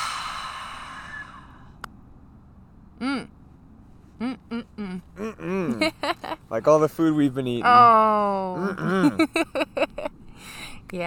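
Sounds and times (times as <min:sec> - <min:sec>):
deep exhale after holding breath: 0:00.0 - 0:01.8
speech: 0:03.0 - 0:03.4, 0:04.2 - 0:05.6, 0:06.5 - 0:09.7
laughter: 0:05.2 - 0:06.4, 0:08.6 - 0:10.1.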